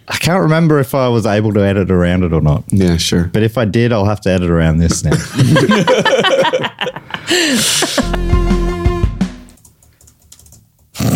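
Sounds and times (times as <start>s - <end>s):
speech: 0.3s - 8.8s
laughter: 5.1s - 8.3s
computer keyboard keys clattering: 9.6s - 10.9s.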